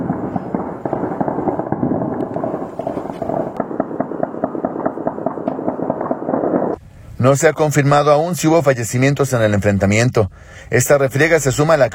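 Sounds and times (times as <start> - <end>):
bursts of high-powered gunfire in a neighbourhood clash: 0.0 - 6.8
speech: 7.2 - 11.9.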